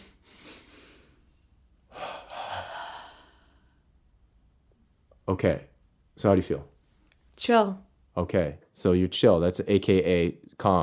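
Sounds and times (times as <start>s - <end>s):
deep breathing exercise with double exhale: 0.0s - 4.0s
speech: 5.3s - 6.7s, 7.4s - 10.8s.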